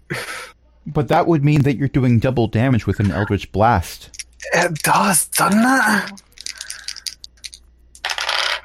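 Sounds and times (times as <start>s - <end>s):
speech: 0.9s - 6.3s
dice clattering across a hard tabletop: 4.2s - 8.6s.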